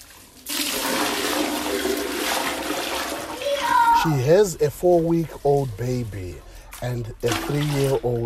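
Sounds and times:
bucket of used bathwater poured into a toilet bowl in Zimbabwe: 0:00.0 - 0:03.5, 0:06.1 - 0:08.2
speech: 0:04.0 - 0:08.2.

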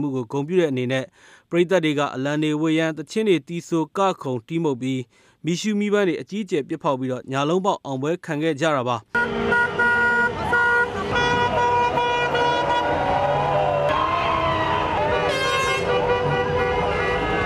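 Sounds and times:
speech: 0:00.0 - 0:09.7
car horns honking in celebration on the street: 0:09.1 - 0:17.4
steady traffic noise: 0:09.1 - 0:17.4.

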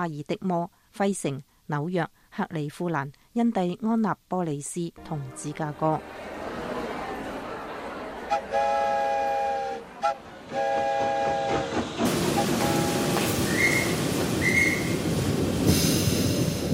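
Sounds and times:
speech: 0:00.0 - 0:06.4
laughter: 0:06.0 - 0:09.1
steam train whistle: 0:08.2 - 0:15.0
funeral steam train rumbling along the rails: 0:08.5 - 0:16.7.

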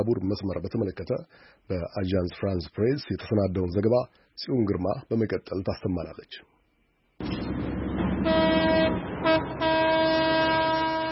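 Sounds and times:
speech: 0:00.0 - 0:06.6
century-old French-built train rumble leaving the station: 0:07.2 - 0:11.1
train horn blasts: 0:08.2 - 0:11.1.

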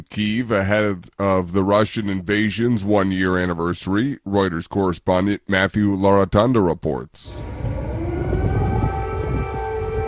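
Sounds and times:
speech: 0:00.1 - 0:07.6
low rumbling city noise: 0:07.2 - 0:10.0
air raid sirens wailing: 0:07.3 - 0:10.0.

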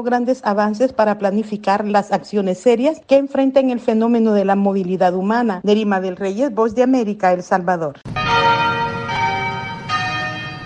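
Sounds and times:
speech: 0:00.0 - 0:08.5
Anglican cathedral church bells ringing at noon in Cape Town: 0:08.1 - 0:10.6.

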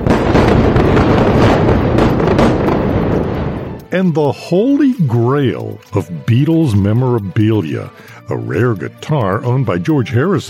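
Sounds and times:
huge explosions near an airport: 0:00.0 - 0:04.0
speech: 0:03.9 - 0:10.4.

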